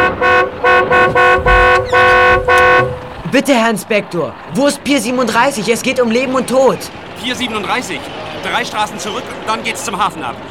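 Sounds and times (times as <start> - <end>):
car horn honking from a car beside a police patrol car: 0.0 - 3.3
speech: 3.3 - 10.5.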